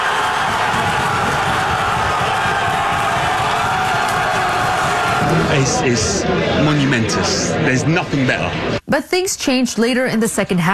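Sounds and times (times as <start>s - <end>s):
packed pub crowd cheering wildly after a goal in Montreal: 0.0s - 7.3s
speech: 5.6s - 10.7s.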